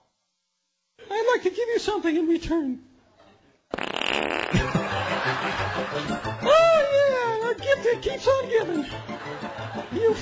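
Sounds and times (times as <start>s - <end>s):
speech: 1.4s - 2.9s, 7.8s - 10.2s
long sputtering fart: 3.7s - 4.8s
laughter: 4.5s - 7.5s, 8.6s - 10.2s.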